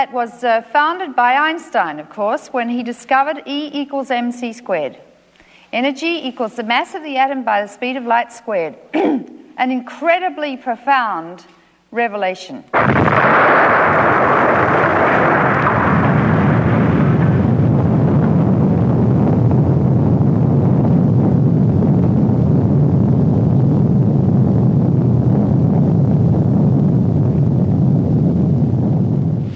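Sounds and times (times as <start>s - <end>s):
speech: 0.0s - 5.1s, 5.7s - 14.2s
deep rumbling roar after explosion: 12.8s - 29.3s
huge explosion: 12.8s - 29.5s.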